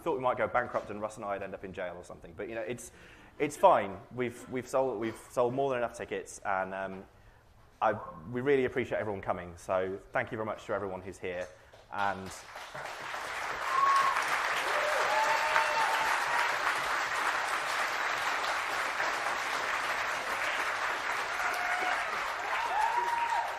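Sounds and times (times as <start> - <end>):
speech: 0.1 - 7.2, 7.8 - 13.2
audience applause at a live ticketed show: 12.4 - 23.5.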